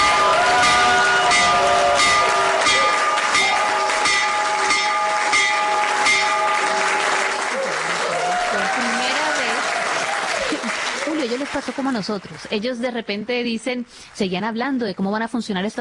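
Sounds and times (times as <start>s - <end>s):
stock market opening bell ringing: 0.0s - 7.4s
loud applause and cheering: 0.0s - 12.5s
speech: 11.6s - 15.7s.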